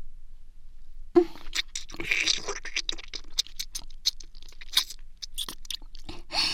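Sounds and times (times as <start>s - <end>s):
person eating, crunching and chewing: 1.3s - 6.1s.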